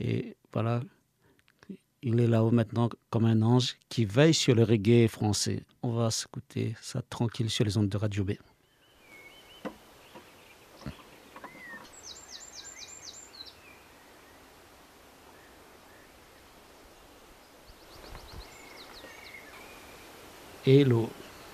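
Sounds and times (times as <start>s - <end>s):
speech: 0.0s - 1.0s, 1.7s - 8.5s, 20.7s - 21.2s
faint birdsong: 8.4s - 21.5s.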